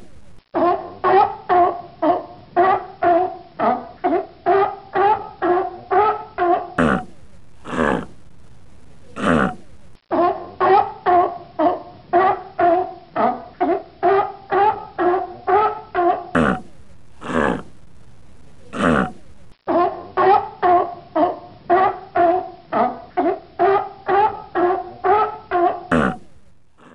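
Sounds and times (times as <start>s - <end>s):
sea lion calling: 0.5s - 7.1s, 10.1s - 16.7s, 18.7s - 26.9s.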